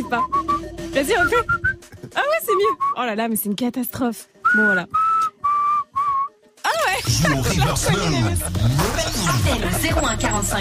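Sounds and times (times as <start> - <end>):
speech: 0.0 - 0.4, 1.0 - 5.0, 7.1 - 10.5
person whistling sustained steady notes and a warbling trill: 0.0 - 1.9, 2.7 - 3.0, 4.5 - 6.4
laughter: 6.7 - 10.5.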